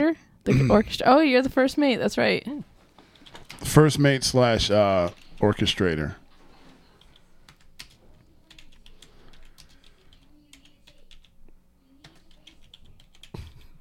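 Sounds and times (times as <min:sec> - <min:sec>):
low hum: 0:00.0 - 0:13.7
speech: 0:00.1 - 0:02.7, 0:03.6 - 0:06.2
rapid typing on a computer keyboard: 0:03.1 - 0:03.6, 0:07.0 - 0:11.4, 0:12.0 - 0:13.7.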